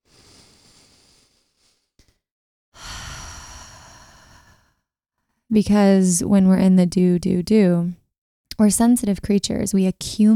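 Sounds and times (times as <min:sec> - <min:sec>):
slow deep breath: 0:00.0 - 0:02.2, 0:02.8 - 0:04.9
speech: 0:05.5 - 0:08.0, 0:08.6 - 0:10.3.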